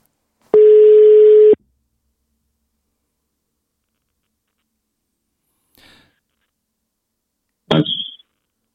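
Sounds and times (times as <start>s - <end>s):
telephone ringback tone: 0.6s - 1.6s.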